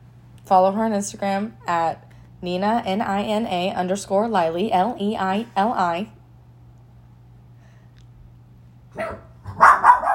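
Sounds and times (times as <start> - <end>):
speech: 0.5 - 6.2
pet dog barking in quick loud yips: 8.9 - 10.1.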